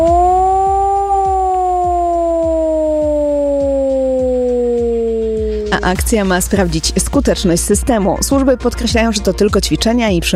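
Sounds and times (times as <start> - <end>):
civil defense siren wailing during nationwide exercise in Poland: 0.0 - 6.6
speech: 5.8 - 10.3.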